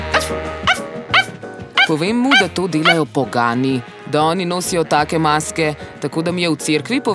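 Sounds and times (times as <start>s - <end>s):
dog barking and growling: 0.2s - 3.0s
speech: 1.9s - 7.1s.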